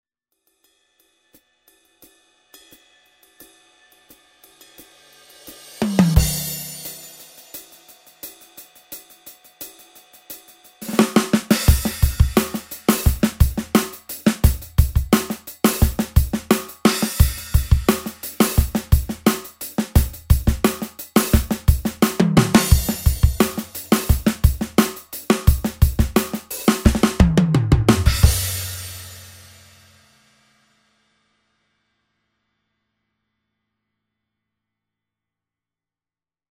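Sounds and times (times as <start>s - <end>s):
pop drums only: 4.1s - 29.9s.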